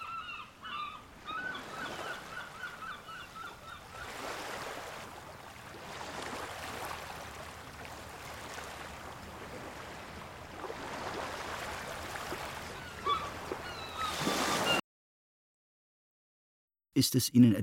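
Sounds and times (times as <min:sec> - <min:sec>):
honking bird calls: 0:00.0 - 0:04.9, 0:12.3 - 0:14.8
sea waves breaking on a beach: 0:00.0 - 0:14.8
speech: 0:17.0 - 0:17.6.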